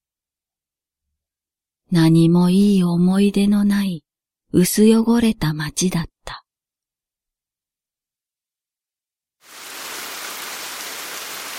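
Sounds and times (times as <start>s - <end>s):
speech: 1.9s - 6.4s
steady rain: 9.4s - 11.5s.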